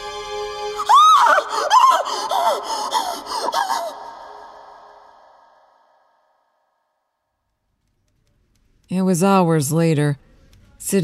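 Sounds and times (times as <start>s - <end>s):
woman's shaky cries and gasps: 0.7s - 5.9s
woman screaming with hands pressed to her mouth: 0.8s - 5.8s
speech: 8.9s - 11.0s.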